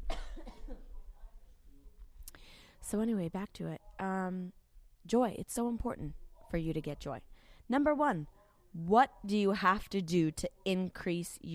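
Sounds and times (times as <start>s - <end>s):
loud cough: 0.0s - 1.0s
speech: 2.8s - 11.5s.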